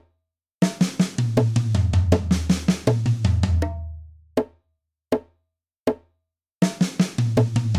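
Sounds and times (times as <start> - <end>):
drum fills at 80 bpm: 0.6 - 3.8, 6.6 - 7.7.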